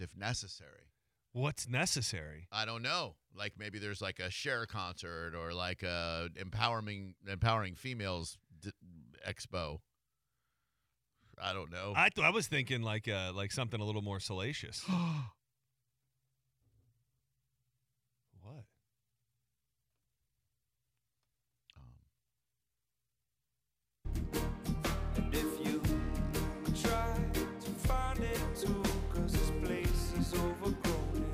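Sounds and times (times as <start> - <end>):
speech: 0.1 - 9.9, 11.4 - 15.4
short sharp gasps: 10.2 - 11.4, 14.8 - 15.4
loud full music: 24.1 - 31.3.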